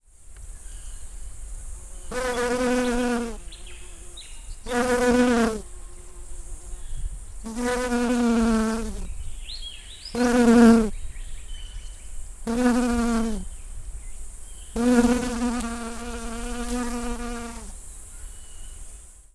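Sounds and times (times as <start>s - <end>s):
honeybee flying: 2.0s - 9.1s, 12.5s - 13.5s, 14.8s - 17.8s.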